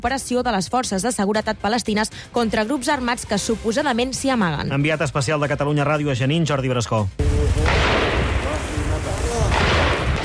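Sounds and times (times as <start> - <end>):
speech: 0.0 - 7.8
booming blasts in a refugee camp: 7.2 - 10.2
dense continuous gunfire in a refugee camp: 7.2 - 10.2.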